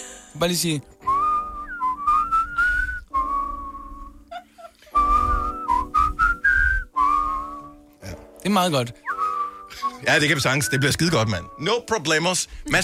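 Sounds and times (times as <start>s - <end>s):
speech: 0.4s - 1.0s, 8.5s - 9.0s, 9.8s - 12.8s
person whistling a melodic tune: 1.0s - 4.3s, 4.9s - 7.8s, 9.0s - 11.6s.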